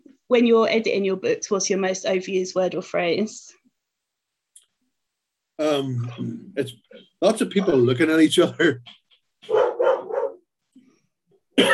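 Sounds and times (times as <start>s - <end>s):
speech: 0.3s - 3.6s, 5.6s - 9.6s
dogs barking at the postman: 9.4s - 10.4s.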